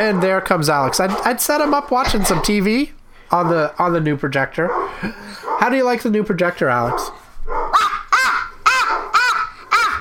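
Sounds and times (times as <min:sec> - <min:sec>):
dog barking: 0:00.0 - 0:02.4, 0:04.6 - 0:05.8, 0:06.9 - 0:09.9
speech: 0:00.0 - 0:07.2.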